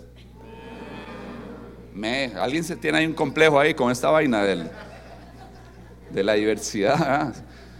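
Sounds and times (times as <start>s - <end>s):
audience imitating cattle mooing together: 0.4s - 3.8s
speech: 2.0s - 4.9s, 6.1s - 7.6s
laughter: 3.1s - 7.4s.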